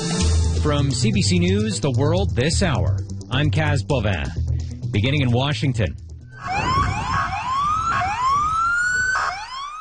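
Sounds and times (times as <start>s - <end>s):
rumbling street background: 0.2s - 9.8s
speech: 0.6s - 6.7s
police sirens wailing: 6.2s - 9.8s.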